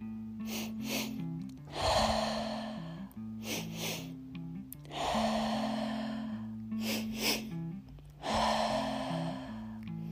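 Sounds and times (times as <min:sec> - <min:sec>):
soft sustained music: 0:00.0 - 0:10.1
two quick sharp inhalations then full exhalation: 0:00.4 - 0:04.2, 0:04.8 - 0:10.1.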